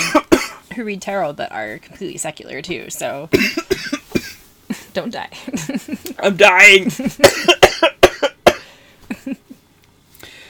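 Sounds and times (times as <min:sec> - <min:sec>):
person coughing harshly in a coughing fit: 0:00.0 - 0:00.7, 0:03.3 - 0:04.4, 0:06.9 - 0:09.4
speech: 0:00.8 - 0:04.0, 0:05.0 - 0:07.6.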